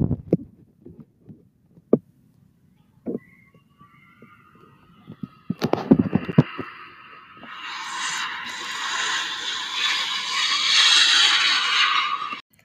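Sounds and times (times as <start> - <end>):
low thumps and clunks: 0.0 - 2.1, 5.0 - 6.8
airplane engine whining and roaring during takeoff: 4.2 - 12.4.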